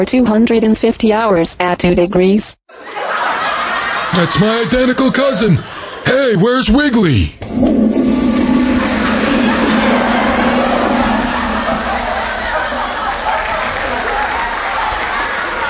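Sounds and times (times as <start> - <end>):
speech: 0.0 - 3.2, 4.1 - 8.2
laughter: 2.7 - 6.3, 8.6 - 15.6
toilet flushing: 7.4 - 15.6.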